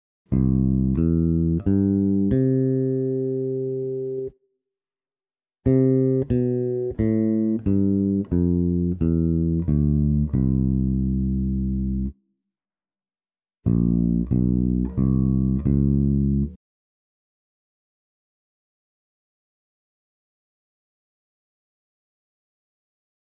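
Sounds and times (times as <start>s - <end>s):
walking bass line: 0.3s - 4.2s, 5.7s - 12.1s, 13.7s - 16.6s.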